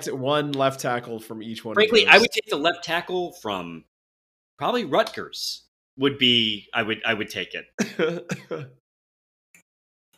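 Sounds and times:
speech: 0.0 - 3.9, 4.6 - 8.8
stifled cough mixed with a half laugh: 7.8 - 8.8.

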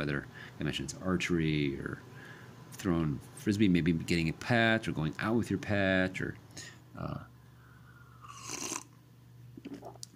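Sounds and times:
speech: 0.0 - 7.3
faint steady hum: 0.0 - 10.1
person sipping water with apple cider vinegar: 8.2 - 9.0, 9.6 - 10.1.

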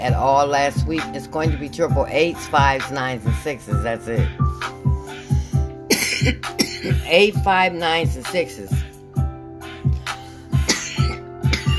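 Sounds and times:
speech: 0.0 - 4.8, 6.2 - 8.8
hoarse chesty coughing: 5.8 - 7.1, 10.5 - 11.7.

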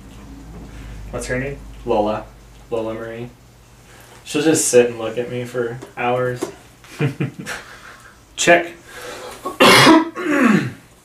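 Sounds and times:
speech: 1.1 - 3.4, 4.3 - 7.7, 8.4 - 9.1
person coughing harshly after riding hard: 9.5 - 10.8.

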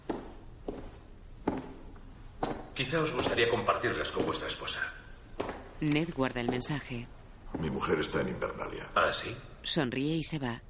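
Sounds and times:
soft footsteps of a man walking: 0.0 - 7.9
speech: 2.8 - 5.0, 5.8 - 10.6.

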